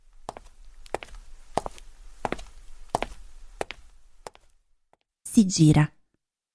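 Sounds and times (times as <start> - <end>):
muffled footsteps: 0.1 - 5.0
speech: 5.4 - 6.0.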